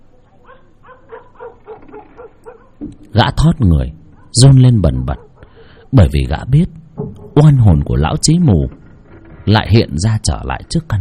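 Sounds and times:
low hum: 0:00.0 - 0:11.0
dog barking at night: 0:00.4 - 0:02.8, 0:04.1 - 0:04.4, 0:05.0 - 0:05.9
speech: 0:03.1 - 0:05.3, 0:05.9 - 0:08.8, 0:09.5 - 0:11.0.

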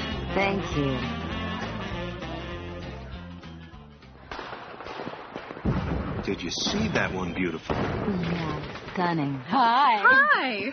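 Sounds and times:
music: 0:00.0 - 0:04.6
speech: 0:00.4 - 0:01.2, 0:06.3 - 0:10.7
Christmas fireworks crackling and popping: 0:04.0 - 0:10.6
loud fireworks bang: 0:04.3 - 0:09.2
laughter: 0:10.0 - 0:10.7.

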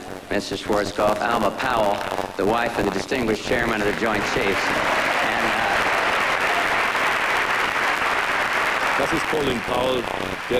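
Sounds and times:
speech: 0:00.3 - 0:05.0, 0:09.0 - 0:10.5
large audience applauding at a ceremony: 0:03.4 - 0:10.5.

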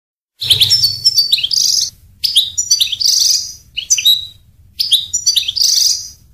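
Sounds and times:
European goldfinch singing jingling twitters and buzzy notes: 0:00.4 - 0:06.2.

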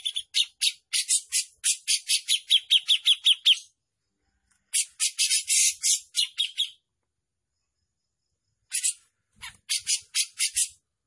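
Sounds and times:
grey-cheeked bulbul singing harsh scratchy chattering bursts: 0:00.0 - 0:03.8, 0:04.7 - 0:06.8, 0:08.7 - 0:10.9.

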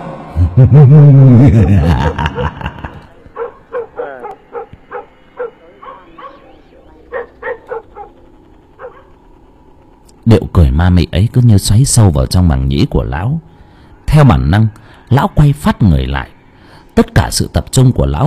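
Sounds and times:
laughter: 0:00.4 - 0:03.4
speech: 0:00.6 - 0:02.7, 0:10.8 - 0:13.5, 0:14.1 - 0:16.3, 0:17.0 - 0:18.2
dog whining cry: 0:03.3 - 0:09.2
dog barking fiercely at night: 0:03.4 - 0:08.2, 0:08.8 - 0:09.2.

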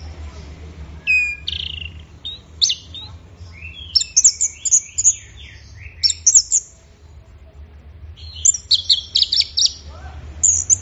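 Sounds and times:
low hum: 0:00.0 - 0:10.8
orange-headed thrush rich rapid whistled and chattering song: 0:01.0 - 0:06.7, 0:08.2 - 0:10.8.

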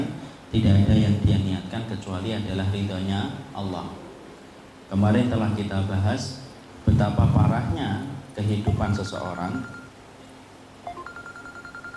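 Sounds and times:
speech: 0:00.5 - 0:04.0, 0:04.9 - 0:09.8
phone signalling an incoming call with electronic tones and pulsed beeps: 0:08.7 - 0:10.0, 0:10.8 - 0:11.9.

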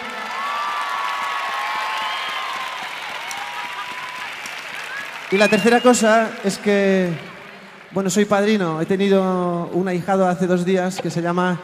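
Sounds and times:
concert audience cheering: 0:00.0 - 0:08.2
concert audience clapping for the band at an anniversary concert: 0:00.0 - 0:09.6
concert audience whistling: 0:01.3 - 0:06.3
speech: 0:05.3 - 0:07.3, 0:07.9 - 0:11.6.

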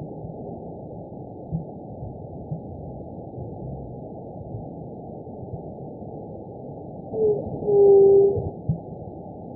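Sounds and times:
White-tipped dove (Leptotila verreauxi) moaning coo: 0:07.2 - 0:08.5.

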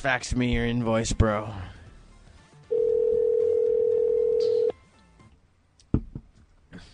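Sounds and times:
speech: 0:00.0 - 0:01.8
telephone dial tone after caller hangs up: 0:02.7 - 0:04.7.

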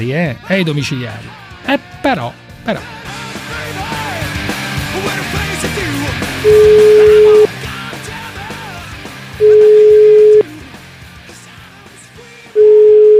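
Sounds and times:
speech: 0:00.0 - 0:03.2
telephone ringback tone on a phone line during a call: 0:06.4 - 0:07.5, 0:09.4 - 0:10.4, 0:12.6 - 0:13.1.

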